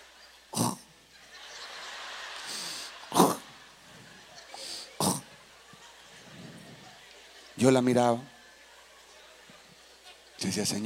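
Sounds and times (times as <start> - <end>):
laughter: 0.0 - 10.4
voice mimicking a sleeping woman's loud snoring: 0.6 - 0.8, 3.1 - 3.4, 5.0 - 5.2
speech: 7.6 - 8.3, 10.5 - 10.8.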